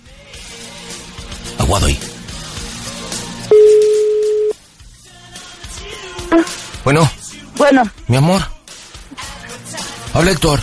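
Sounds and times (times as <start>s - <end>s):
speech: 1.6s - 2.1s, 6.8s - 8.5s, 10.2s - 10.6s
telephone ringing tone as a call connects: 3.5s - 4.6s.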